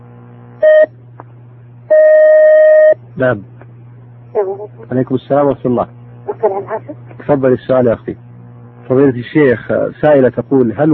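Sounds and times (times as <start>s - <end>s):
long steady telephone line tone: 0.0s - 1.0s, 1.9s - 3.1s
telephone line hum as a caller's call connects: 0.0s - 10.2s
telephone line beep as a caller's call connects: 0.6s - 0.9s, 1.9s - 3.0s
speech: 3.2s - 3.5s, 4.4s - 8.3s, 8.9s - 10.9s.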